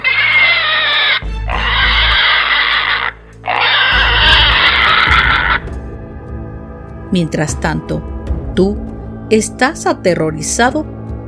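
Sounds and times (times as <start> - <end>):
pig squealing: 0.0 - 5.7
speech: 7.1 - 11.0.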